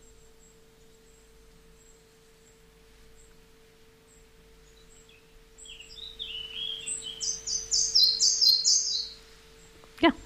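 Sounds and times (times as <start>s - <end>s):
red-breasted flycatcher song with mimicry of chiffchaff, bicycle and wren: 0.0s - 10.1s.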